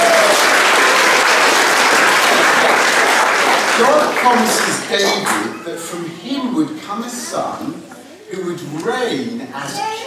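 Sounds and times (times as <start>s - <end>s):
audience applause: 0.0s - 5.6s
speech: 3.8s - 10.0s.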